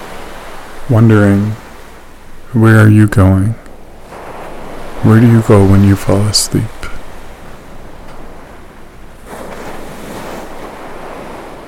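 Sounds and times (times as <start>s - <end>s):
ocean surf breaking on a beach: 0.0s - 11.6s
wind rumble: 0.0s - 11.6s
speech: 0.9s - 1.6s, 2.5s - 3.6s, 5.0s - 6.8s.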